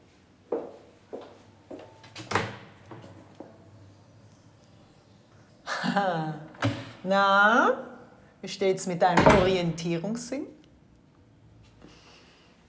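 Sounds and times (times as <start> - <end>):
speech: 6.0 - 10.5
door knocks and latch clunks: 9.2 - 9.6.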